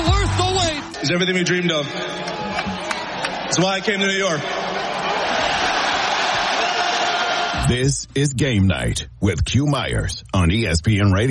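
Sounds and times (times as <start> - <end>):
crowd cheering a basketball championship win: 0.0 - 7.8
speech: 1.0 - 2.7, 3.5 - 4.8, 7.7 - 11.2.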